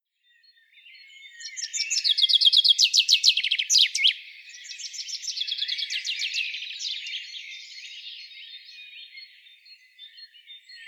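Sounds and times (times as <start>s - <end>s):
common chaffinch Fringilla coelebs singing: 1.4s - 7.1s.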